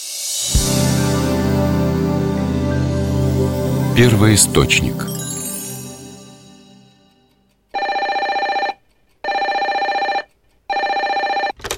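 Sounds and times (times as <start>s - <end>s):
fading tone: 0.0s - 7.3s
speech: 4.0s - 5.2s
electronic telephone ringing with a buzzing warble: 7.8s - 11.6s.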